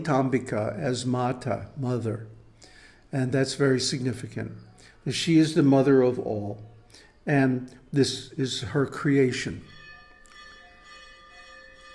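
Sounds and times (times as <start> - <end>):
speech: 0.0 - 2.4, 3.1 - 9.7
temple bell ringing at a temple of the goddess Lalitambika: 8.2 - 11.9.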